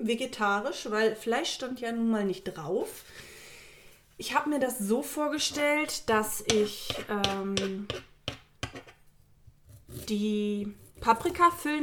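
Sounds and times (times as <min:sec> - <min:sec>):
speech: 0:00.0 - 0:03.3, 0:04.2 - 0:08.1, 0:10.1 - 0:11.8
knife chopping spring onions on a cutting board: 0:06.4 - 0:09.0, 0:09.6 - 0:11.7.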